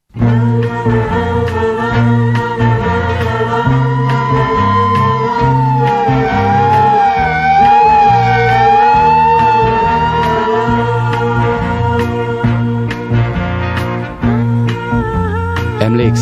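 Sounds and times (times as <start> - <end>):
steady low pulsing drone: 0.2 - 15.6
speeding ambulance siren wailing: 3.1 - 12.7.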